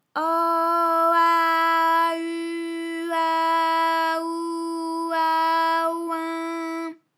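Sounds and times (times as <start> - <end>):
person vocalizing vowels: 0.2 - 7.0.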